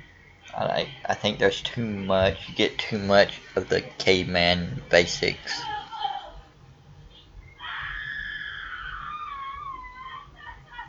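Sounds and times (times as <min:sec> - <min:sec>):
low steady hum: 0:00.0 - 0:10.8
speech: 0:00.5 - 0:05.8
laughter: 0:00.5 - 0:06.6, 0:07.6 - 0:10.8
person yelling a long high-pitched call: 0:05.6 - 0:06.4.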